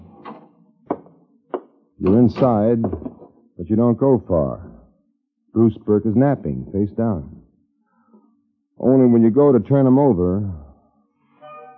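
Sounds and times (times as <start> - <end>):
speech: 2.0 - 3.1, 3.7 - 4.7, 5.6 - 7.4, 8.8 - 10.6
door being unlatched and eased open: 2.0 - 3.3.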